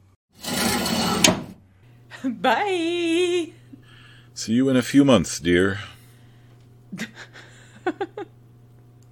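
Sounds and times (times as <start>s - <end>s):
drawer sliding shut: 0.4s - 1.6s
speech: 2.2s - 3.6s, 4.4s - 5.9s, 7.9s - 8.3s.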